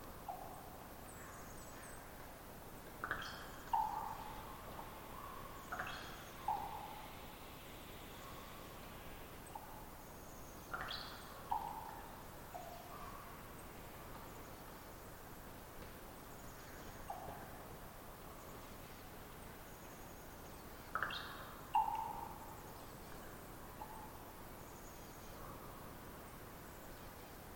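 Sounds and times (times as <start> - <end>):
quiet hiss of open outdoor air: 0.0 - 27.5
raven popping and twittering from a perch overhead: 2.9 - 7.2, 10.7 - 13.4, 17.0 - 17.6, 20.9 - 22.6.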